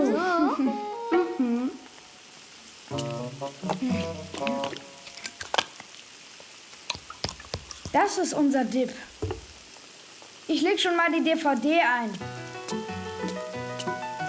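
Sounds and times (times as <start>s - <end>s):
person humming: 0.1s - 1.9s, 2.9s - 4.8s
breaded cutlets sizzling in a frying pan: 2.1s - 14.2s
speech: 7.9s - 9.1s, 10.5s - 12.4s.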